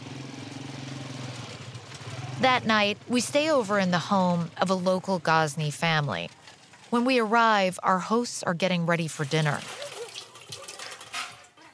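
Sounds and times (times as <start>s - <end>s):
speech: 2.4s - 9.8s
water poured over hands into a silver bowl: 9.1s - 11.5s.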